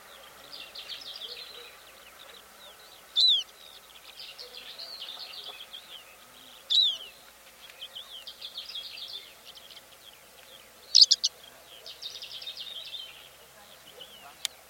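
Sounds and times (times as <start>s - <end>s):
greater short-toed lark chirps: 0.0s - 3.6s, 4.2s - 7.2s, 10.5s - 14.6s
quiet twittering: 0.0s - 14.6s.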